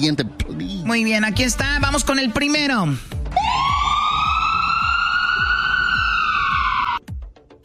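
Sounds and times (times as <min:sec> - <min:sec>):
speech: 0:00.0 - 0:03.8
loud emergency vehicle siren wailing and yelping: 0:03.3 - 0:07.0.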